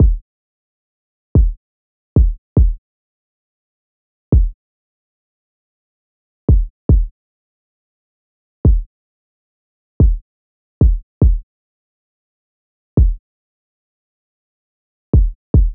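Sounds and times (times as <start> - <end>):
dry kick drum in E minor: 0.0 - 0.2, 1.4 - 1.6, 2.2 - 2.8, 4.3 - 4.6, 6.5 - 7.1, 8.7 - 8.9, 10.0 - 10.2, 10.8 - 11.4, 13.0 - 13.2, 15.2 - 15.7.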